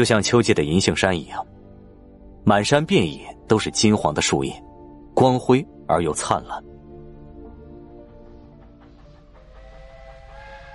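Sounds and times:
speech: 0.0 - 1.5, 2.4 - 6.7
steam train whistle sounding across open wilderness: 9.4 - 10.7.

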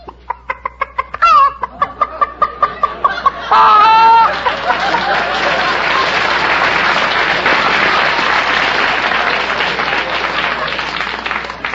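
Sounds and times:
quiz show contestant imitating a cackling chicken: 0.0 - 2.8, 3.5 - 4.4
loud sustained audience applause: 3.5 - 11.7.

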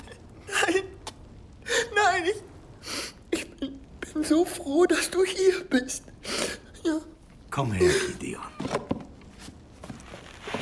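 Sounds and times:
person crying with shaky whimpering sobs and catching gasps: 0.0 - 2.3, 2.9 - 4.3
speech: 4.3 - 6.1, 6.9 - 8.7.

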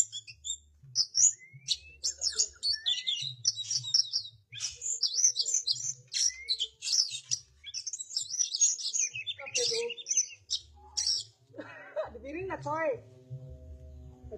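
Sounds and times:
Oriental magpie-robin singing: 0.0 - 11.4
laughter: 2.1 - 2.8, 11.5 - 12.4
low steady hum: 10.6 - 14.3
speech: 12.6 - 13.1.

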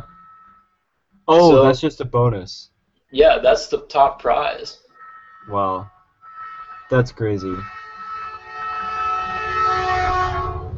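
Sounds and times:
train horn blaring: 0.0 - 0.9, 4.1 - 10.7
speech: 1.3 - 4.8, 5.4 - 6.0, 6.9 - 7.8
low rumble of a passing train near a house: 4.1 - 10.7.

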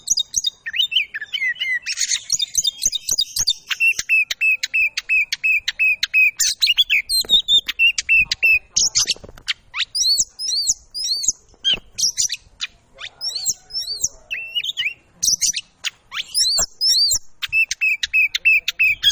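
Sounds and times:
Oriental magpie-robin singing chirps and whistles: 0.0 - 19.1.

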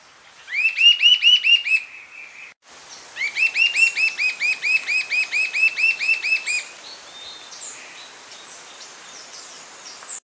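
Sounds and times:
sibilant sirystes Sirystes sibilator sibilator whistled calls: 0.5 - 2.3, 3.2 - 6.7.

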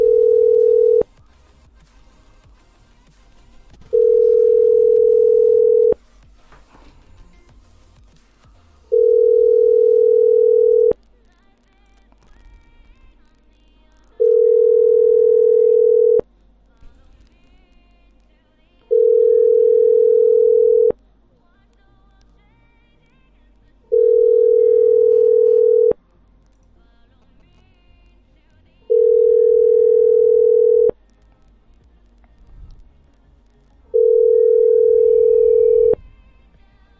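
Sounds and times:
telephone tones as a dialed number goes through: 0.0 - 1.1, 3.9 - 6.0, 8.9 - 11.0, 14.2 - 16.3, 18.9 - 21.0, 23.9 - 26.0, 28.9 - 31.0, 33.9 - 36.0.

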